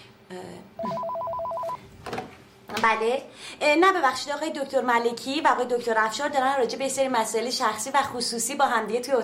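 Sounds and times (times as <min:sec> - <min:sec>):
speech: 0:00.3 - 0:01.0, 0:02.8 - 0:09.2
telephone ringing in a doctor's office: 0:00.8 - 0:01.8.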